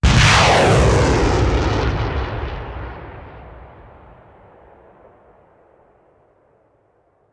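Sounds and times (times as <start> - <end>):
artillery missile launcher firing: 0.0 - 4.4.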